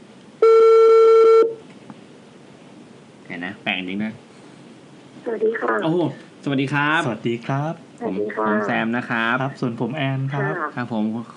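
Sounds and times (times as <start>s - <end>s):
telephone ringback tone on an unanswered outgoing call: 0.4s - 1.6s
speech: 3.3s - 4.3s, 5.3s - 11.3s.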